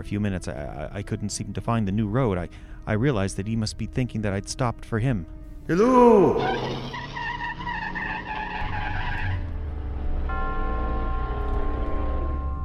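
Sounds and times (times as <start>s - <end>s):
speech: 0.0s - 7.0s
car tires squealing and skidding: 5.8s - 10.3s
car engine revving and rumbling as the car pulls away: 6.2s - 12.5s.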